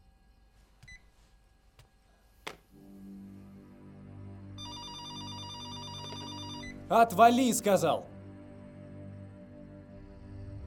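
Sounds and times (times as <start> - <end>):
electronic trilling telephone ringing inside a home: 4.6 - 6.9
speech: 6.9 - 8.1.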